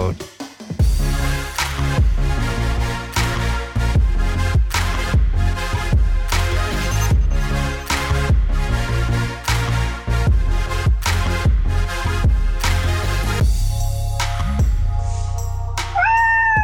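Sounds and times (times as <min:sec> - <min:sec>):
music with rhythmic punchy chords: 0:00.0 - 0:16.6
domestic cat meowing: 0:15.8 - 0:16.6.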